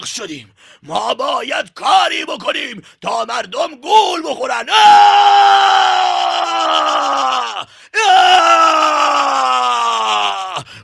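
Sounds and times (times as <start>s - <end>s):
speech: 0.0s - 10.8s
dramatized devil character screaming: 4.7s - 10.8s
dramatized devil character groaning wail: 4.8s - 10.6s.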